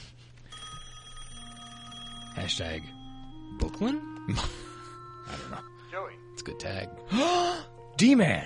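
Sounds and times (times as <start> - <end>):
telephone ringing: 0.5 - 5.8
speech: 2.4 - 3.0, 3.6 - 4.7, 5.3 - 8.4.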